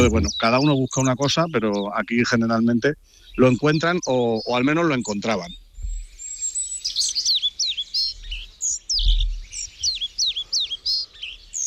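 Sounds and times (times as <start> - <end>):
faint low rumble: 0.0 - 0.5
speech: 0.0 - 5.6
European pied flycatcher calling: 0.0 - 11.6.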